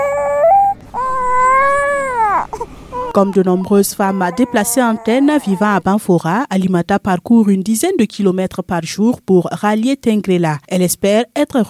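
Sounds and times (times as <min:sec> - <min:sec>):
baby whimpering on its mother's back in the sun: 0:00.0 - 0:05.9
speech: 0:03.2 - 0:11.6.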